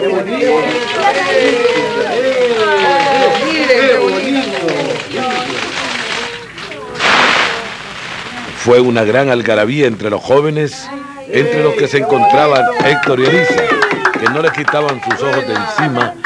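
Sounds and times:
speech: 0.0 - 4.8, 8.6 - 16.2
many young people chattering and calling out in a park: 0.0 - 16.2
illuminated fountain water splashing: 0.4 - 9.4.

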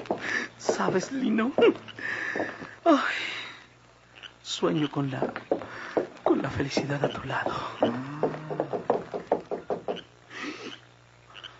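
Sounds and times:
firm knocks on a wooden door: 0.0 - 1.8, 5.2 - 10.0
speech: 0.2 - 3.4, 4.5 - 8.2.

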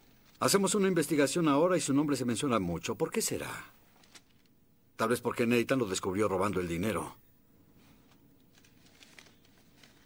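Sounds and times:
low steady hum: 0.0 - 10.0
speech: 0.4 - 3.8, 5.0 - 7.2
investigator leafing through papers: 3.9 - 4.5, 7.8 - 10.0.

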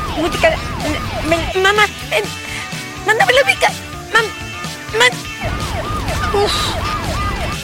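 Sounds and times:
police car siren wailing: 0.0 - 7.6
speech: 0.2 - 5.6, 6.3 - 7.0.

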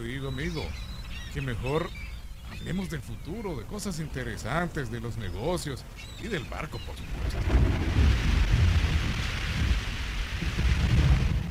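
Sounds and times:
speech: 0.2 - 8.3
heavy torrential rain pouring outside during a storm: 3.7 - 11.5
deep rumble of thunder: 7.0 - 11.5.

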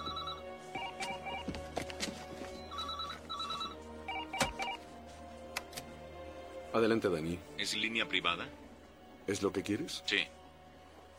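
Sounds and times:
telephone ringing with short electronic beeps: 0.0 - 1.5, 2.6 - 4.8
speech: 6.8 - 8.6, 9.3 - 10.4.

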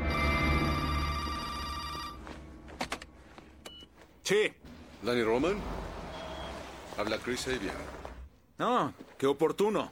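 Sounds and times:
telephone ringing with a bright metallic bell tone: 0.1 - 2.4
speech: 4.3 - 5.9, 6.9 - 8.0, 8.6 - 9.9.

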